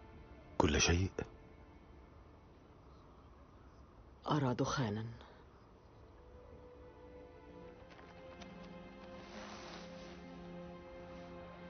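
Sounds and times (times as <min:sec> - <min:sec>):
speech: 0:00.7 - 0:01.4, 0:04.3 - 0:05.2
rustling: 0:07.6 - 0:11.4
horse hooves clip-clopping at a walking pace while being led: 0:07.7 - 0:09.2.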